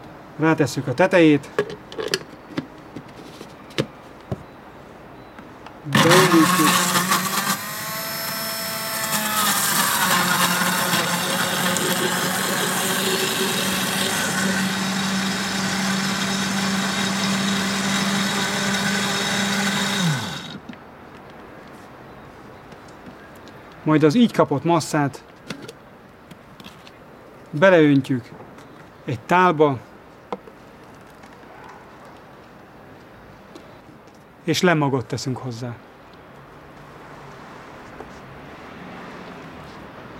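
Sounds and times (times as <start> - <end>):
speech: 0.4 - 2.2, 5.9 - 6.8, 23.9 - 25.3, 27.6 - 28.4, 29.1 - 29.9, 34.5 - 35.9
blender pureeing peppers with very little water: 5.9 - 20.6.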